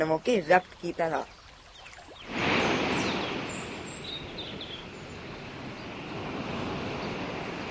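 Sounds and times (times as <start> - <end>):
speech: 0.0 - 1.4
ocean waves washing on shore: 1.6 - 7.6
surf hissing and foaming along the shore: 2.1 - 7.6.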